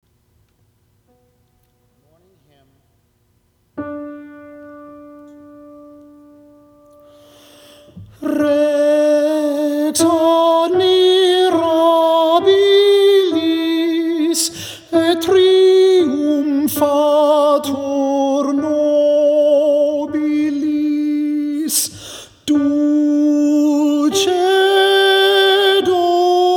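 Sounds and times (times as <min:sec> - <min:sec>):
alto singing a morning hymn: 0:07.2 - 0:26.5.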